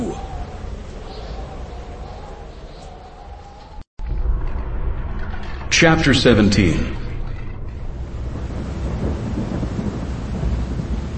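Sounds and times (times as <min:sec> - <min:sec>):
heavy rain in a thunderstorm: 0:00.0 - 0:03.0, 0:05.1 - 0:11.1
deep rolling rumble of thunder: 0:00.0 - 0:11.1
gusty wind: 0:00.0 - 0:11.1
speech: 0:05.8 - 0:07.0.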